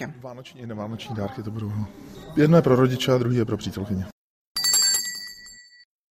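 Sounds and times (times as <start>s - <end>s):
speech: 0.0s - 4.1s
small handbell ringing: 4.6s - 5.9s.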